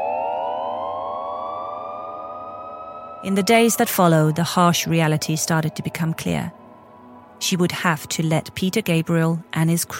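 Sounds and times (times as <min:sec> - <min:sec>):
ambulance siren wailing: 0:00.0 - 0:07.4
speech: 0:03.2 - 0:06.6, 0:07.4 - 0:09.9.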